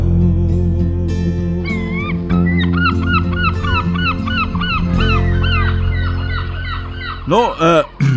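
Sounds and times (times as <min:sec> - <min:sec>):
steady low droning hum: 0:00.0 - 0:08.0
seagulls squawking while mating: 0:01.6 - 0:08.1
speech: 0:07.3 - 0:07.9.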